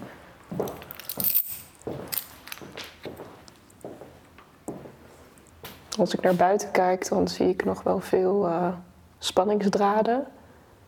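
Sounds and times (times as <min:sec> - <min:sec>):
soft footsteps walking into a living room: 0:00.0 - 0:06.6
speech: 0:00.5 - 0:02.0, 0:06.0 - 0:10.4
keys jangling in a person's hands: 0:00.6 - 0:02.9.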